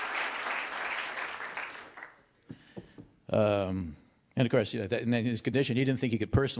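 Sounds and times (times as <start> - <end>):
crowd applause: 0.0 - 2.2
speech: 3.3 - 6.5.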